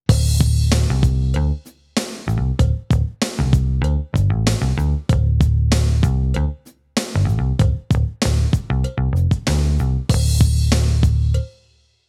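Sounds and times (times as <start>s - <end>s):
Korg electric bass: 0.1s - 1.6s, 2.3s - 6.6s, 7.2s - 11.5s.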